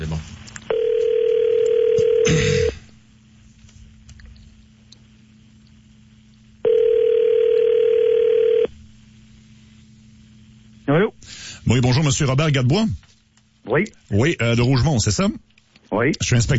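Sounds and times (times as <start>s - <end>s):
telephone line tones as a call is placed: 0.7s - 2.8s, 6.6s - 8.7s
speech: 11.7s - 13.1s, 13.7s - 16.5s.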